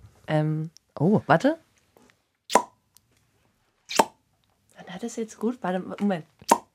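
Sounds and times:
speech: 0.3s - 1.6s, 5.0s - 6.4s
squeezed ketchup bottle plopping out sauce: 2.5s - 2.7s, 6.5s - 6.7s.

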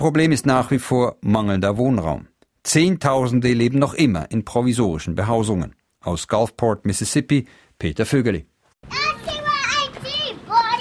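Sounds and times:
speech: 0.0s - 9.0s
young children playing on the steps of a trailer, chattering and calling out: 8.8s - 10.7s.

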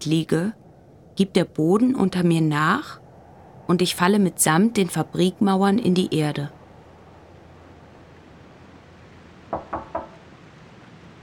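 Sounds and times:
speech: 0.0s - 0.6s, 1.2s - 3.0s, 3.7s - 6.6s
knocking on a door: 9.5s - 10.2s.

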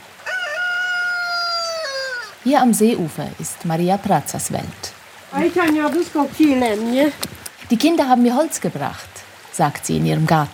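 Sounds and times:
rooster crowing: 0.1s - 2.4s
speech: 2.4s - 10.5s.

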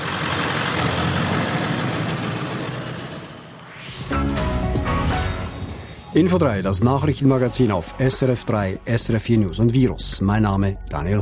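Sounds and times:
truck engine pulling away in the evening: 0.0s - 6.0s
speech: 6.2s - 11.1s.

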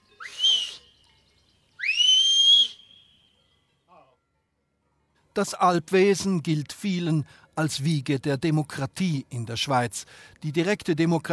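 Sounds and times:
Alpine herder whistling to call people in Switzerland: 0.1s - 1.0s, 1.8s - 3.3s
speech: 5.4s - 11.3s.

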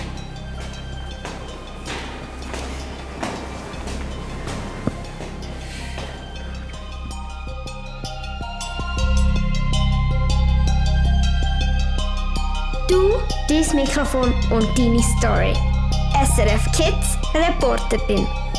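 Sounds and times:
moped engine droning through an echoing bunker tunnel: 0.0s - 15.6s
speech: 13.7s - 18.4s.

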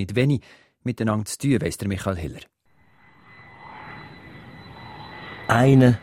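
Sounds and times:
speech: 0.0s - 2.6s, 5.5s - 6.0s
airliner engine roar coming in to land at Zurich Kloten airport in the evening: 2.7s - 6.0s.

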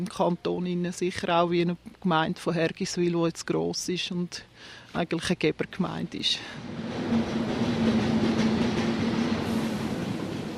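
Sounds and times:
speech: 0.0s - 6.9s
commuter train rolling into a station: 6.5s - 10.5s
faint clatter of train wheels on rails: 6.6s - 10.5s.

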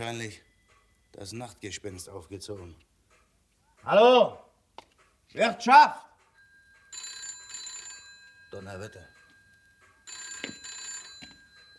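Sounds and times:
speech: 0.0s - 0.5s, 1.1s - 2.9s, 3.8s - 4.5s, 5.3s - 6.1s, 8.5s - 9.1s
old-fashioned telephone bell ringing: 6.4s - 11.7s.

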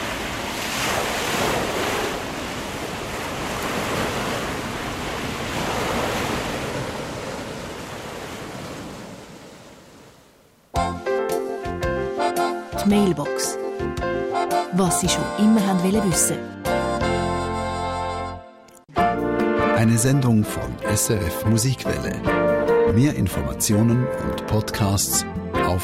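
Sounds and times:
wind: 0.0s - 10.8s
ocean surf breaking on the shore: 0.0s - 14.8s
music: 10.7s - 25.8s
speech: 12.9s - 14.0s, 14.8s - 16.6s, 19.8s - 25.8s.

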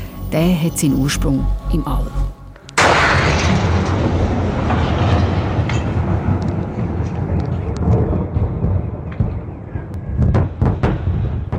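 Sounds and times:
speech: 0.3s - 2.4s
deep sustained rumble with sharp cracks from a meteorite: 2.6s - 11.5s
sonic boom of a larger meteorite racing through the Earth's atmosphere: 2.8s - 11.5s.

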